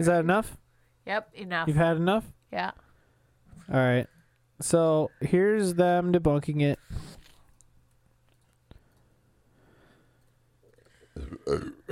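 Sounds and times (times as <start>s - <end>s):
speech: 0.0s - 2.8s, 3.6s - 7.1s, 11.5s - 11.9s
loud low rumbling burp: 11.1s - 11.9s.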